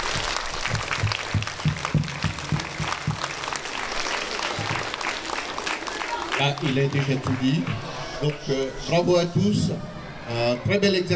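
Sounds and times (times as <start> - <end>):
large outdoor crowd applauding loudly: 0.0 - 8.5
murmuring voices in a crowd: 4.3 - 11.1
speech: 6.4 - 11.1.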